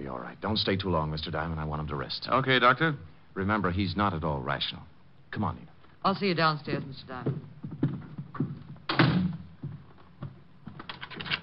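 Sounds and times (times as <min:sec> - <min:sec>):
speech: 0:00.1 - 0:08.6
door shutting: 0:08.9 - 0:09.5.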